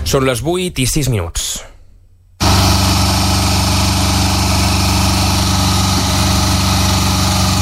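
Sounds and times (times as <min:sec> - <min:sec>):
speech: 0:00.1 - 0:01.7
construction machinery engine droning: 0:02.4 - 0:07.5.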